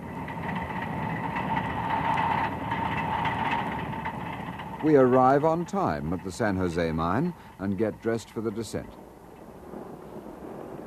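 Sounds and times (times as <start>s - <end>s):
Autocarril engine drone: 0.0s - 8.4s
Autocarril small rail vehicle with steel wheels running along the track toward Oruro: 0.0s - 8.8s
rhythmic steel wheel clatter on track: 0.0s - 8.8s
speech: 4.8s - 9.0s.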